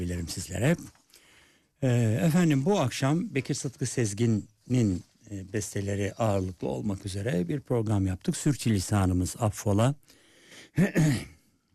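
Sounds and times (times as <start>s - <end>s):
speech: 0.0s - 1.0s, 1.8s - 11.3s
person throat-clearing cough: 10.8s - 11.4s.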